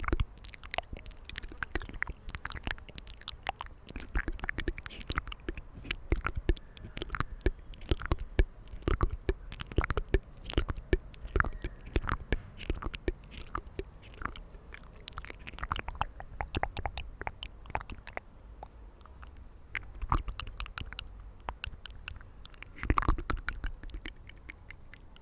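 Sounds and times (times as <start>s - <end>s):
quiet outdoor hush in nature: 0.0s - 25.2s
soft wet mouth sounds in nature: 0.0s - 25.2s.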